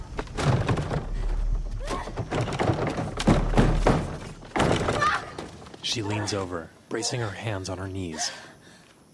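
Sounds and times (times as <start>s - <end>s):
fists pounding on wooden double doors: 0.2s - 5.5s
speech: 5.9s - 8.5s.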